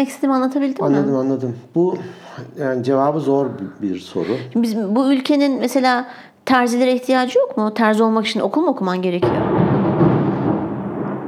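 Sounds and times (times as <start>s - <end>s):
speech: 0.0s - 9.6s
deep rolling rumble of thunder: 9.2s - 11.2s.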